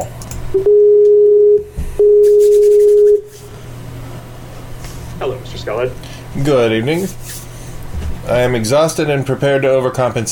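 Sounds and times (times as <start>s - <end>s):
speech: 0.5s - 0.8s, 5.7s - 7.3s, 8.3s - 10.3s
Skype call connecting tone of long electronic beeps: 0.5s - 3.3s.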